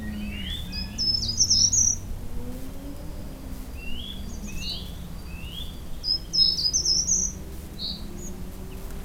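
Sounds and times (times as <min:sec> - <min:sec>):
short-toed treecreeper Certhia brachydactyla singing: 0:00.0 - 0:08.8.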